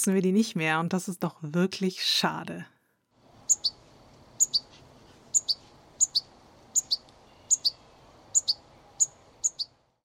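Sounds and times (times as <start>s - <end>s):
speech: 0.0s - 2.7s
soft steady background hiss: 2.5s - 10.0s
European goldfinch calling: 3.5s - 3.8s, 4.4s - 4.7s, 5.3s - 9.7s.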